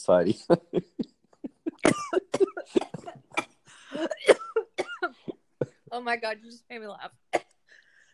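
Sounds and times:
speech: 0.0 - 1.1, 6.1 - 7.2
person coughing from choking on a drink: 0.5 - 5.8.

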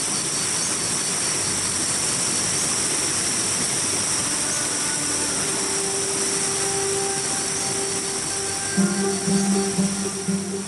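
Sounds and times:
massive Iguazú Falls roaring: 0.0 - 10.6
throbbing: 8.7 - 10.6.

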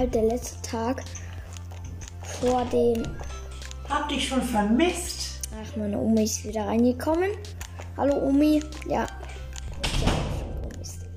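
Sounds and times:
speech: 0.0 - 1.3, 2.4 - 3.3, 3.9 - 9.1
heavy door thud: 9.8 - 10.6.

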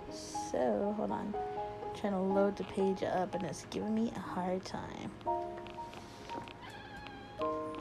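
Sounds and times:
speech: 0.1 - 5.7
cat meowing in drawn-out whiny cries: 6.4 - 7.7.

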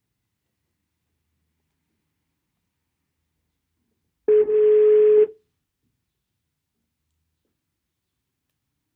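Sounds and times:
low-pitched telephone ringing tone during a call: 4.3 - 5.3.

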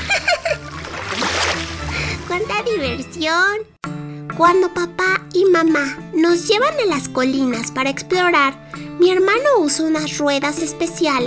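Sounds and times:
laughter: 0.0 - 0.8
water splashing in a stream: 0.5 - 2.6
speech: 2.4 - 11.2.

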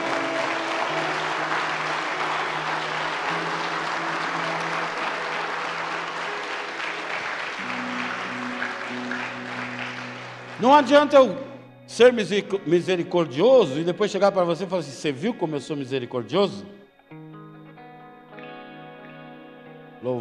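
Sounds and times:
large audience applauding: 0.0 - 11.6
organ or keyboard chords: 0.0 - 20.2
speech: 10.6 - 16.8.

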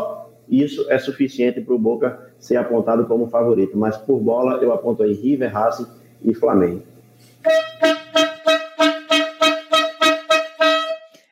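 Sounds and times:
speech: 0.5 - 8.0
horn honking in short loud blasts: 7.4 - 11.2.

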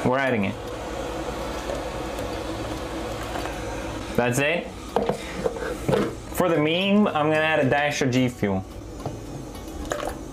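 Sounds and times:
speech: 0.0 - 0.7, 4.2 - 8.8
boiling hot water pouring: 0.0 - 5.0, 9.5 - 10.3.

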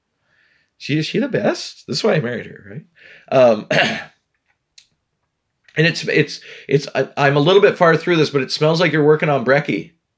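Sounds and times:
speech: 0.8 - 4.1, 5.8 - 10.0
person clearing throat: 3.6 - 4.2
short raspy cough: 3.7 - 4.1.

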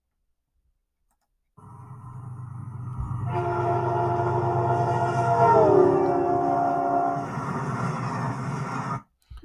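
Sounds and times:
train rumbling past: 1.6 - 9.1
train horn blaring in a long loud chord with Doppler shift: 3.0 - 9.0.

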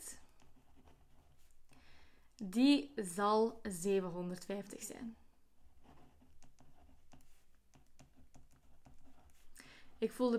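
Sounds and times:
pen writing on paper: 0.3 - 1.7, 5.6 - 9.5
speech: 2.4 - 5.2, 10.0 - 10.3
small pen taps: 6.4 - 9.0.

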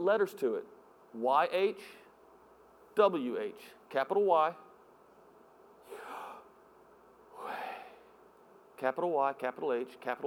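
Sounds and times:
speech: 0.0 - 2.0, 3.0 - 4.6, 8.8 - 10.2
slow deep breathing in and out: 5.8 - 6.6, 7.3 - 8.2.

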